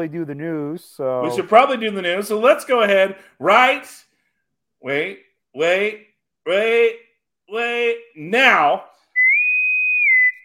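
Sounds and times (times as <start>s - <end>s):
speech: 0.0s - 4.1s, 4.8s - 8.9s
bosun's whistle call: 9.1s - 10.4s.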